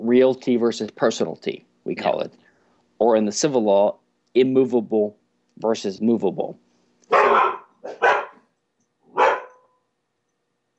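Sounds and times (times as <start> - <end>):
speech: 0.1 - 2.4, 3.0 - 6.6
poodles barking: 7.1 - 8.5, 9.1 - 9.8.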